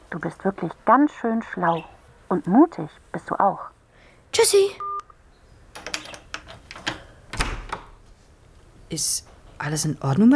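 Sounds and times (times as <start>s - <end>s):
speech: 0.1s - 3.7s, 4.3s - 4.8s, 8.9s - 10.3s
key turning in a lock: 5.8s - 7.8s
door opening clunk: 5.8s - 8.0s.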